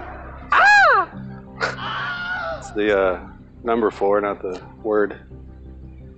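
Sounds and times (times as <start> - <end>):
person's voice imitating the Wilhelm scream with a short yelp: 0.5 - 2.7
speech: 2.8 - 5.4.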